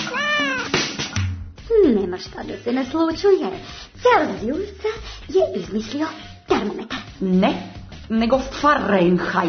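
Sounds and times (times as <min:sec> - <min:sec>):
two cats meowing and yowling: 0:00.1 - 0:00.8
speech: 0:02.2 - 0:09.4.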